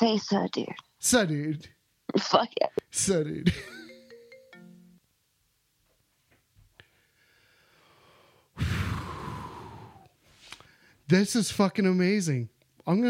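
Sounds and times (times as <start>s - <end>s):
speech: 0.0s - 3.8s, 11.1s - 13.0s
mobile phone ringtone playing brief electronic melody of stacked tones: 3.5s - 5.0s
loud breathy rushing sound: 8.6s - 10.1s.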